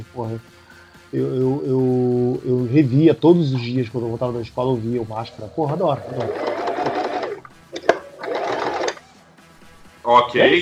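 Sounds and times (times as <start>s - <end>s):
speech: 0.0s - 6.5s, 10.1s - 10.5s
cash register drawer opening with a metallic click and rattling slide: 5.6s - 9.1s.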